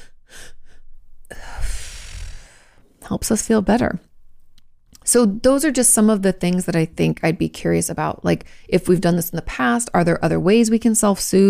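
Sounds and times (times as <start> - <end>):
double in-breath in a breathing exercise: 0.0 - 3.0
speech: 3.1 - 4.1, 5.1 - 11.4.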